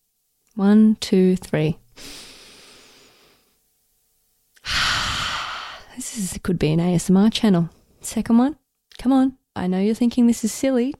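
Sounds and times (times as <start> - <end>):
speech: 0.6 - 2.2, 6.2 - 10.9
deep breathing during a guided breathing exercise: 2.0 - 3.6, 4.6 - 5.9.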